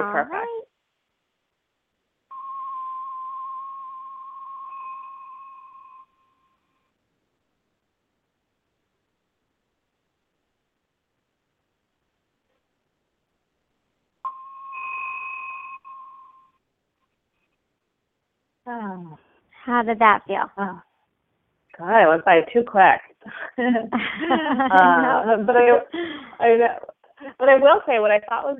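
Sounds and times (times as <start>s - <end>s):
speech: 0.1s - 0.6s, 18.7s - 20.9s, 21.8s - 28.5s
small hand bell ringing for a breathing exercise: 2.3s - 6.7s, 14.3s - 16.6s
laughter: 23.3s - 25.9s.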